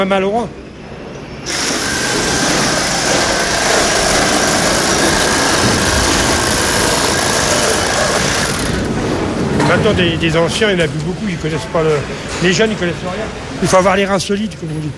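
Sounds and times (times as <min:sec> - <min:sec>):
speech: 0:00.0 - 0:00.6, 0:09.8 - 0:14.9
motorized saw running: 0:01.4 - 0:09.0.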